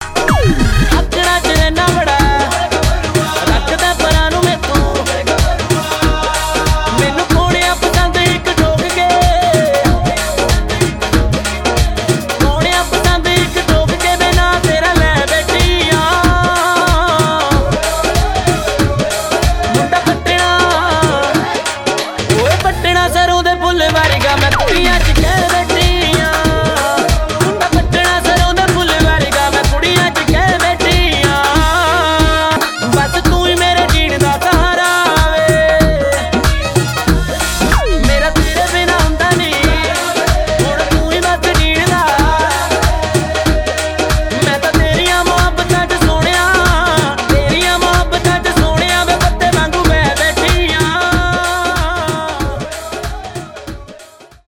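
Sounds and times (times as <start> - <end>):
Punjabi bhangra tones: 0.0 - 54.4.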